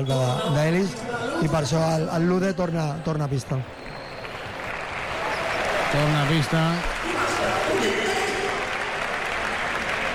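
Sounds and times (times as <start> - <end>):
speech: 0.0 - 3.8, 5.9 - 7.0
large basketball arena crowd applauding and cheering: 3.0 - 10.1.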